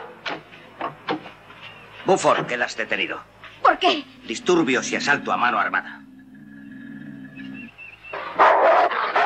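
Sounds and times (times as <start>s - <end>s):
speech: 2.1s - 6.0s
dog barking harshly: 8.2s - 9.2s.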